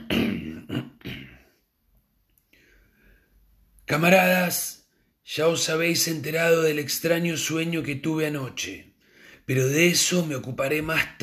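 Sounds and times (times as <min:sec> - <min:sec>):
leader clearing his throat: 0:00.0 - 0:01.6
speech: 0:03.9 - 0:08.9, 0:09.5 - 0:11.2.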